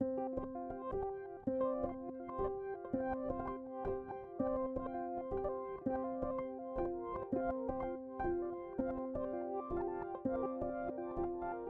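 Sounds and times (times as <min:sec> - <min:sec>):
granular piano in C major: 0:00.0 - 0:11.6.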